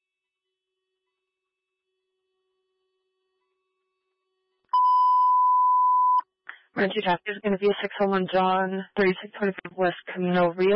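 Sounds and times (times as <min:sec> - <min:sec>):
dispatch radio alert tone beep: 0:04.8 - 0:06.2
speech: 0:06.8 - 0:10.7.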